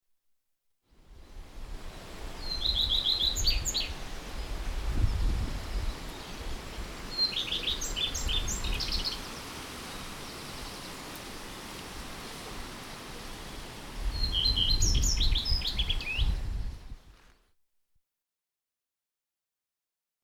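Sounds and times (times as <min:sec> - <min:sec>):
redstart: 0:02.3 - 0:17.0.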